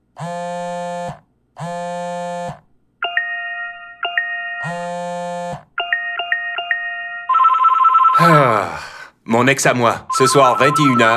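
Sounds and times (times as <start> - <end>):
mobile phone ringtone with buzzy electronic tones and chirpy notes: 3.0 - 8.3, 10.1 - 11.1
speech: 9.4 - 11.1.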